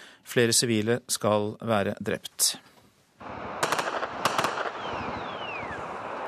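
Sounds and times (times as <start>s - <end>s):
speech: 0.4s - 2.7s
exchange of automatic weapons gunfire: 3.2s - 6.2s.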